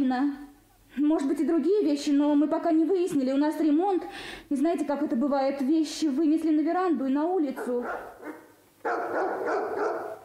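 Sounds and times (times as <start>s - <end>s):
speech: 0.1s - 10.0s
police dog barking: 7.6s - 10.2s.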